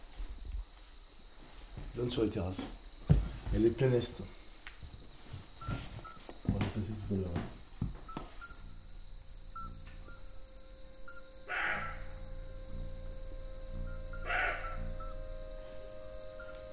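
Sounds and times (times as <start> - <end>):
chorus of crickets chirping: 0.0 - 16.7
speech: 2.0 - 2.8, 3.5 - 4.4, 7.1 - 7.6
low hum: 5.6 - 16.7.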